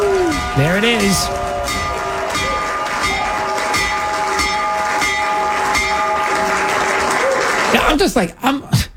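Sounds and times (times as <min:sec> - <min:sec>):
train rumble: 0:00.0 - 0:06.2
bell ringing: 0:00.0 - 0:07.5
speech: 0:00.6 - 0:01.5, 0:08.0 - 0:08.8.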